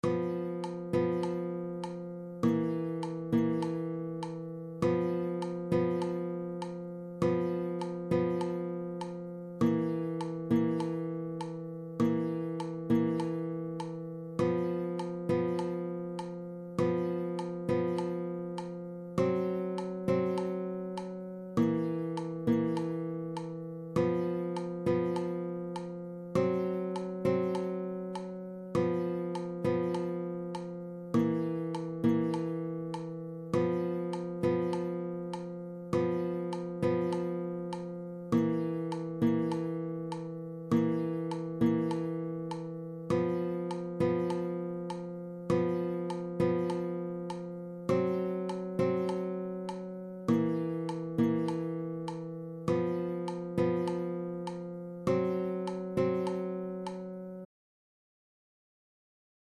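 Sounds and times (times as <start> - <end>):
two-note guitar rhythm: 0.0 - 57.5.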